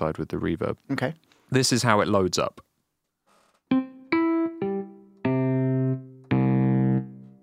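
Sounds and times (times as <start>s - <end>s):
speech: 0.0s - 2.7s
guitar notes through a reverb effects unit: 3.7s - 7.4s.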